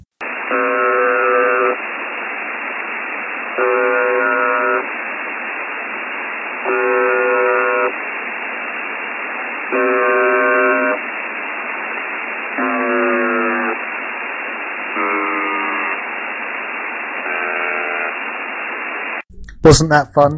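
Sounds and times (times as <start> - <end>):
harsh buzzing tones of a malfunctioning shortwave buzzer station: 0.0 - 2.5, 3.3 - 5.0, 6.5 - 8.1, 9.5 - 19.5
shortwave radio hiss: 0.0 - 19.3
speech: 19.6 - 20.3.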